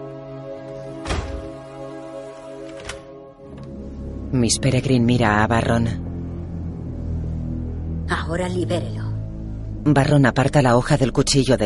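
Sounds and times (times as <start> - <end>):
double door closing with a solid thud: 0.7 - 1.8
steady low humming drone: 3.5 - 10.6
speech: 4.3 - 6.0, 8.3 - 9.0, 9.8 - 11.6.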